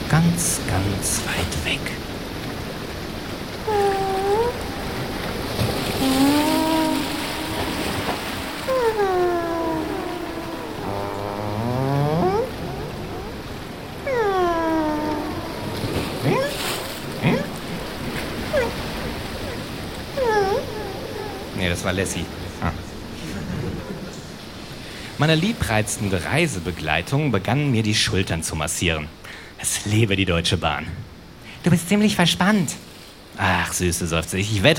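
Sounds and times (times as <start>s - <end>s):
speech: 0.1s - 2.1s, 3.7s - 4.0s, 21.8s - 22.8s, 25.2s - 34.7s
humpback whale song off the coast of Fraser Island: 3.2s - 24.8s.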